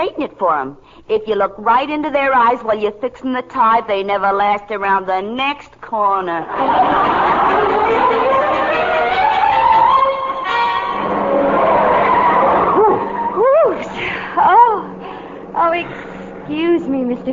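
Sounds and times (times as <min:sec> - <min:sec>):
speech: 0:00.0 - 0:08.2, 0:15.8 - 0:17.3
laughter: 0:06.5 - 0:10.4, 0:11.5 - 0:14.9
car tires squealing as the car skids driven too fast: 0:08.0 - 0:13.9.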